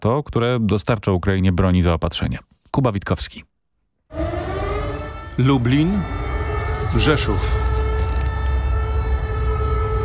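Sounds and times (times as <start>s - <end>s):
speech: 0.0s - 3.5s, 5.4s - 6.2s, 6.9s - 7.7s
air raid warning sirens wailing in Lublin or Rzeszów, Poland: 4.1s - 10.0s.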